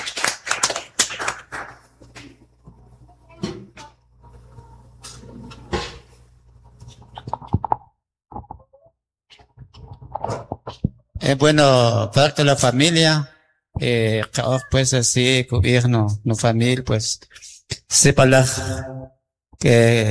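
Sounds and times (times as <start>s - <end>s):
audience applause: 0.0s - 1.9s
speech: 11.3s - 19.0s, 19.6s - 20.1s.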